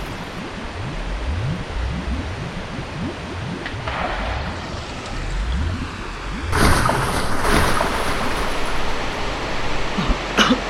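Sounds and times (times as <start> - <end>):
river water rushing: 0.0 - 0.4, 6.5 - 10.5
brief sharp splashes: 0.0 - 10.3.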